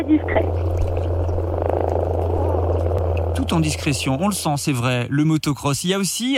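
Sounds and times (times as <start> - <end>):
speech: 0.0 - 0.9, 3.4 - 6.3
common frog calling with a low continuous purring drone: 0.0 - 5.0.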